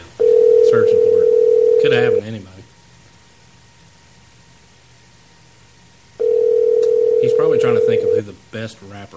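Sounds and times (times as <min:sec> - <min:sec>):
steady electronic phone ringing tone of an outgoing call: 0:00.2 - 0:02.2, 0:06.2 - 0:08.2
speech: 0:01.9 - 0:02.5, 0:08.6 - 0:09.1.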